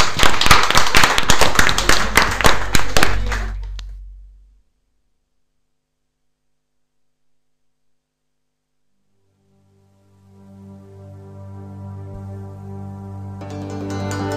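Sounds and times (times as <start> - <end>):
audience clapping at a live event: 0.0 - 4.0
faint low hum: 1.2 - 14.2.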